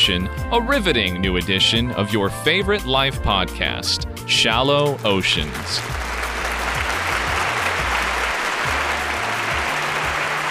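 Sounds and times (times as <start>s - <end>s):
speech: 0.1s - 6.1s
large studio audience applauding: 5.5s - 10.4s.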